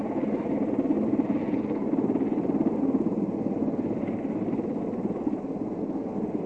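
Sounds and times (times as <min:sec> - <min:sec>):
recovery helicopter rotor and engine drone: 0:00.0 - 0:06.4.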